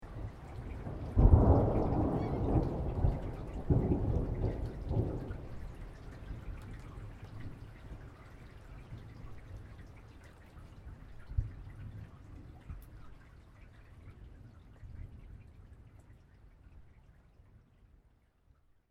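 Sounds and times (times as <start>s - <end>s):
distant thunderclap with long rumble tail: 0.2s - 8.0s.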